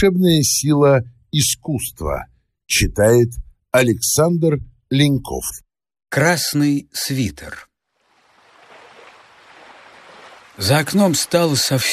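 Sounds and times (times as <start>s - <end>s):
speech: 0.0s - 7.7s, 10.6s - 11.9s
sea surf waves breaking and hissing on a nearby shore: 8.0s - 11.9s.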